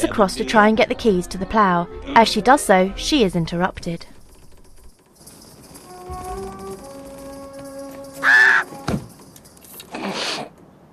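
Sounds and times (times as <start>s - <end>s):
speech: 0.0s - 4.1s
bird cawing near the cab of a snowplow: 8.2s - 8.8s.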